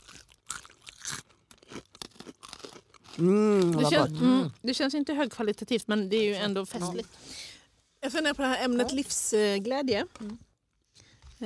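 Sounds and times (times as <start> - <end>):
crunchy food being chewed: 0.0 - 4.1
speech: 3.2 - 7.4, 8.1 - 10.5.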